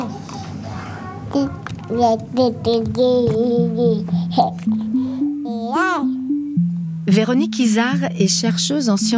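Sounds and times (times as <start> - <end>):
baby babbling and cooing: 0.0 - 6.2
faint hum: 0.0 - 9.1
speech: 1.3 - 6.2, 7.1 - 9.1.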